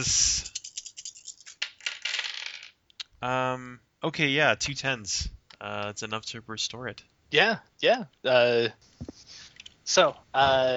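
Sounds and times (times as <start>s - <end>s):
speech: 0.0s - 0.4s, 3.2s - 9.1s, 9.9s - 10.7s
dice clattering and rolling on a hard surface: 0.4s - 2.8s.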